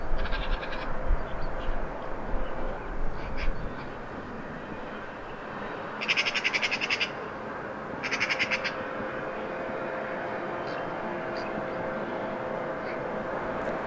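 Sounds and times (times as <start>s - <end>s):
steady low rumble of work machinery: 0.0s - 13.8s
magpie chattering in a tree: 6.0s - 7.1s, 8.0s - 8.7s.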